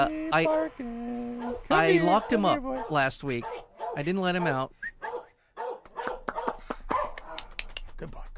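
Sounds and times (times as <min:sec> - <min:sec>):
speech: 0:00.0 - 0:04.8, 0:08.0 - 0:08.3
dog barking: 0:01.4 - 0:07.6.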